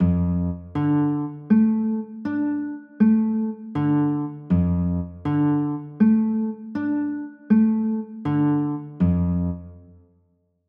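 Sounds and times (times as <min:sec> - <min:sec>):
D minor chords: 0:00.0 - 0:10.0.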